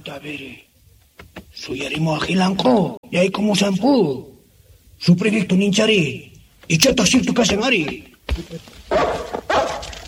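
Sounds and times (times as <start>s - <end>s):
speech: 0.1s - 0.7s, 1.6s - 4.4s, 5.0s - 9.7s
dogs barking: 8.9s - 10.0s.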